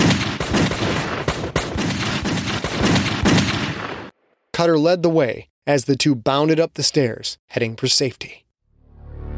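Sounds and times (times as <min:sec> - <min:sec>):
gunfire fired randomly into a dark basement: 0:00.0 - 0:04.1
speech: 0:04.6 - 0:08.4.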